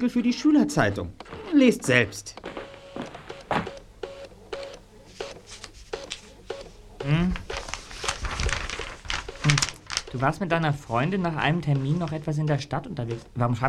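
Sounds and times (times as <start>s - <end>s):
speech: 0.0s - 3.1s, 10.2s - 13.6s
printer printing a document with mechanical clicks and whirring: 0.0s - 10.5s.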